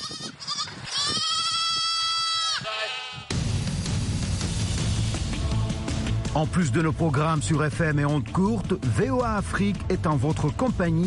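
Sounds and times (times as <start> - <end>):
goats and sheep bleating: 0.0 - 3.4
dense rough wash of outdoor noise: 0.0 - 11.0
speech: 6.4 - 11.0.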